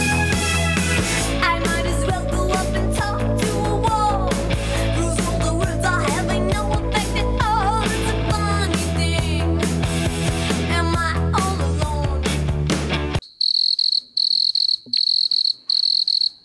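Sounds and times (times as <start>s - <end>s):
loud busy music: 0.0s - 13.2s
cricket chirping in shrill trilling bursts: 13.2s - 16.4s.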